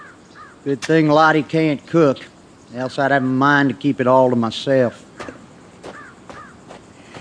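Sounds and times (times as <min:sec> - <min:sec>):
crow cawing while crows are being fed: 0:00.0 - 0:00.7, 0:05.2 - 0:06.7
steady hiss: 0:00.0 - 0:07.1
speech: 0:00.6 - 0:05.1
soft thumps: 0:05.2 - 0:07.1.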